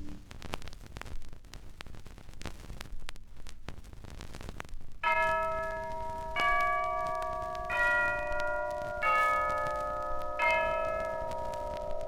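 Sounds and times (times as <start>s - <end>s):
church bells tolling: 5.0s - 12.0s.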